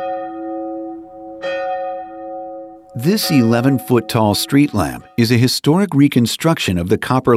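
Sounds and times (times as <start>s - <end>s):
church bell ringing: 0.0s - 5.4s
speech: 3.0s - 7.3s.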